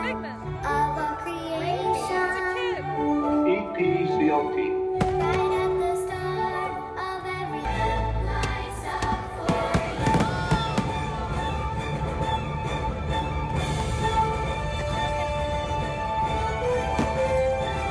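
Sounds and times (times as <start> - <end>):
steady music: 0.0 - 17.8
fireworks exploding outdoors at a park near its front and gift shop: 9.4 - 11.2.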